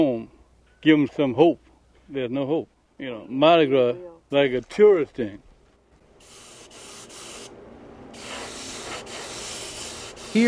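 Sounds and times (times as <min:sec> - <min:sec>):
speech: 0:00.0 - 0:05.5
spray paint hissing on parade floats: 0:06.2 - 0:07.5, 0:08.1 - 0:10.4.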